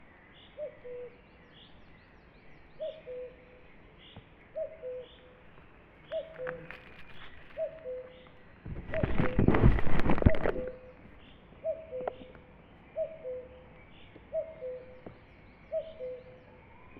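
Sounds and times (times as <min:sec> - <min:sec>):
cuckoo calling in a forest: 0:00.6 - 0:01.2, 0:02.8 - 0:03.6, 0:04.5 - 0:05.4, 0:06.1 - 0:11.0, 0:11.6 - 0:13.7, 0:14.3 - 0:16.9.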